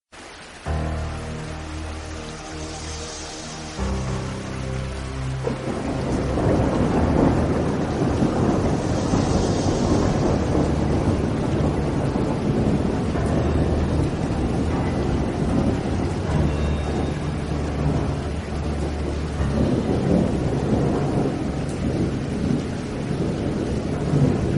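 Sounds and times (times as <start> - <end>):
storm music: 0.2 - 24.5.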